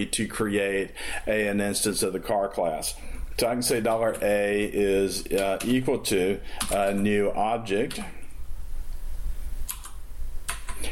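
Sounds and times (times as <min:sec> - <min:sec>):
speech: 0:00.0 - 0:08.2
low steady hum: 0:00.0 - 0:10.8
typing on a computer keyboard: 0:06.6 - 0:06.8, 0:09.7 - 0:10.8.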